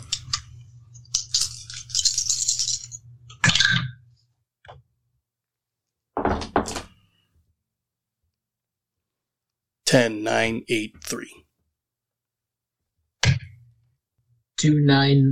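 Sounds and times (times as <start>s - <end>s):
several dice rattling across a hard surface: 1.1s - 3.6s
speech: 9.9s - 11.4s, 14.6s - 15.3s.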